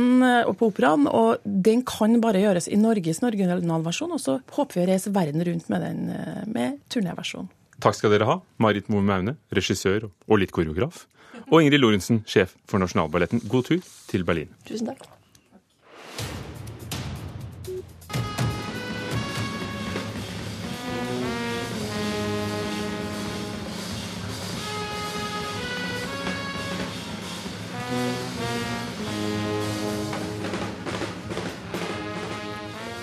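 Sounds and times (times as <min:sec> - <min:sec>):
speech: 0:00.0 - 0:15.2
fourteen-piece jazz orchestra playing with rich horn harmonies: 0:17.6 - 0:33.0.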